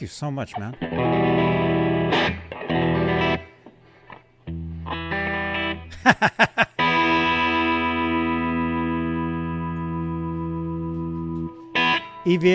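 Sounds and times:
speech: 0.0 - 1.8, 6.0 - 6.4, 12.3 - 12.5
distorted electric guitar through a tape echo: 0.6 - 5.9, 6.7 - 12.5
laughter: 5.9 - 6.9.

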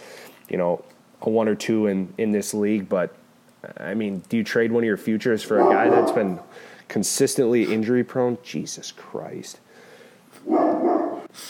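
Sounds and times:
speech: 0.5 - 9.6
dog barking: 5.5 - 6.5, 10.4 - 11.3.

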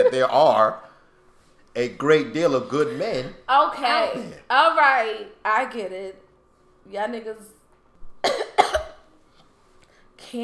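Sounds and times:
speech: 0.0 - 0.9, 1.8 - 6.2, 6.8 - 7.6, 10.2 - 10.4
person coughing: 8.2 - 9.0.

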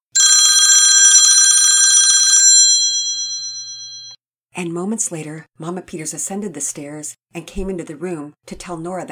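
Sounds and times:
old-style telephone bell ringing: 0.1 - 4.2
speech: 4.6 - 9.1.

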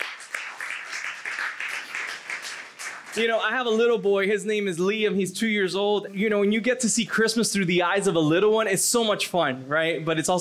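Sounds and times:
audience clapping hands in praise: 0.0 - 3.4
speech: 3.2 - 10.3.

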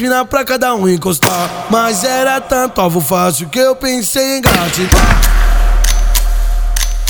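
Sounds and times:
speech: 0.0 - 5.6
gunshot sound effects: 1.2 - 3.8, 4.5 - 7.0.

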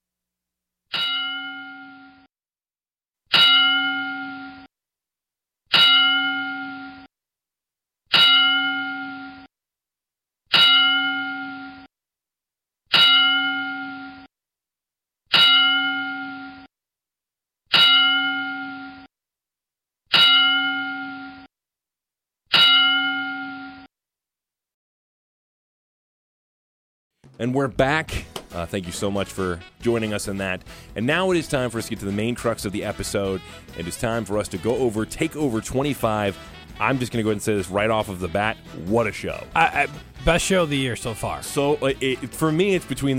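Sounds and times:
bell tolling in a wrestling ten-bell salute: 0.9 - 2.3, 3.3 - 4.7, 5.7 - 7.1, 8.1 - 9.5, 10.5 - 11.9, 12.9 - 14.3, 15.3 - 16.7, 17.7 - 19.1, 20.2 - 21.5, 22.6 - 23.9
speech: 27.4 - 43.1.

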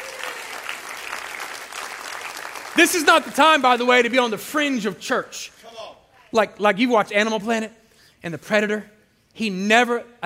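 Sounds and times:
congregation clapping hands: 0.0 - 4.7
speech: 2.8 - 5.6, 6.3 - 10.2.

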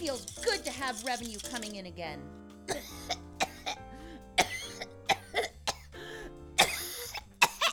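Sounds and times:
speech: 0.2 - 3.2
harsh wet coughing fit bringing up blood and tissue: 2.7 - 3.8, 4.4 - 5.9, 6.6 - 7.7.

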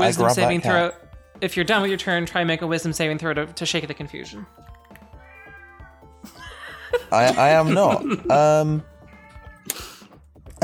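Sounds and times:
speech: 0.0 - 4.7, 6.2 - 8.9
cat meowing sound effect: 5.1 - 6.0, 9.0 - 9.8
laughter: 6.3 - 8.5.

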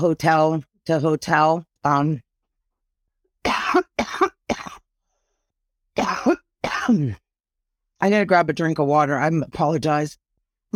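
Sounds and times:
speech: 0.0 - 2.2, 6.9 - 7.2, 8.0 - 10.7
hoarse woman coughing: 3.5 - 4.9, 6.0 - 7.2.

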